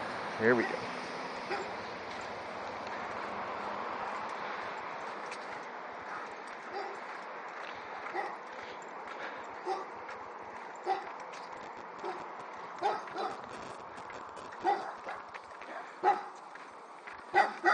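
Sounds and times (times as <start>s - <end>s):
steady outdoor hum: 0.0s - 17.7s
speech: 0.4s - 1.7s
dogs barking behind a fence: 1.4s - 1.8s, 6.0s - 7.2s, 8.0s - 10.2s, 10.8s - 11.2s, 12.0s - 13.5s, 14.5s - 16.4s, 17.3s - 17.7s
light footsteps: 1.4s - 17.7s.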